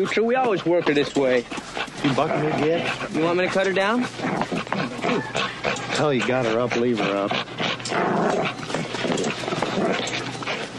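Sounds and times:
speech: 0.0 - 8.6
pit bull dog on a rope growling and snarling: 0.0 - 10.7.

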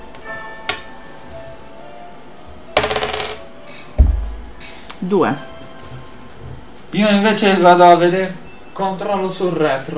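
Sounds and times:
die rolled on a table during a tabletop role-playing game: 2.8 - 3.4
speech: 5.0 - 5.5, 7.0 - 9.9.

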